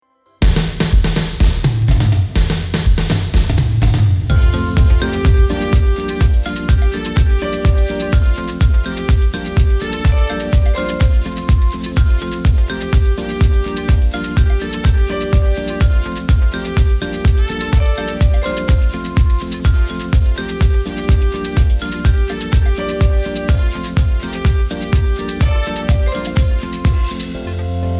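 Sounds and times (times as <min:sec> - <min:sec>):
drums: 0:00.4 - 0:27.9.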